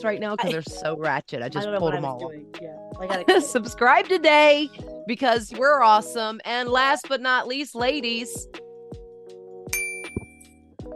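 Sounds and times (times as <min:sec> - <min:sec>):
speech: 0:00.0 - 0:08.6
laughter: 0:00.4 - 0:00.7, 0:03.1 - 0:03.7
desk bell being struck: 0:09.7 - 0:10.5.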